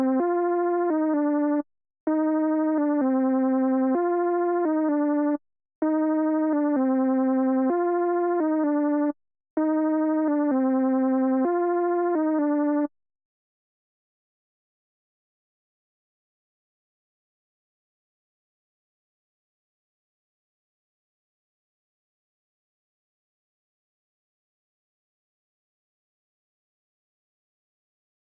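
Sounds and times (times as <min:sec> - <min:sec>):
Juno-60 synth lead arpeggio in C minor: 0:00.2 - 0:12.9.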